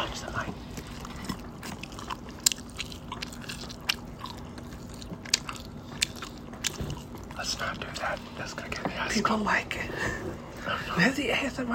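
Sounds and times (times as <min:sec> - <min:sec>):
food bitten and chewed with the mouth open: 0:00.4 - 0:08.6
speech: 0:08.2 - 0:11.7.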